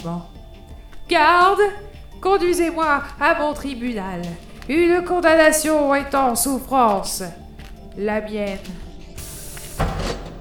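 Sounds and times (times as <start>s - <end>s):
speech: 0.0s - 0.4s, 1.1s - 7.4s, 8.0s - 8.8s
pneumatic automatic sliding door hissing shut: 9.2s - 10.4s.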